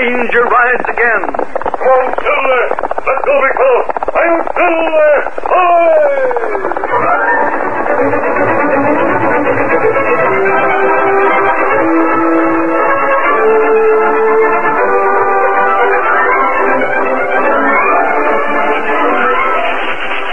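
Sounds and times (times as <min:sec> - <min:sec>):
speech: 0:00.0 - 0:04.5
short train of locomotive, tender, car and caboose moving along spur line: 0:00.0 - 0:20.3.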